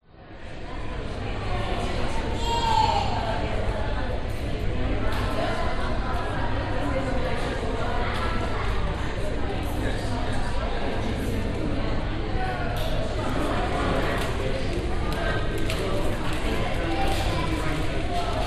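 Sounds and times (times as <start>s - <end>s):
busy people chatting in a cafe and museum interior in Brisbane: 0.2s - 18.4s.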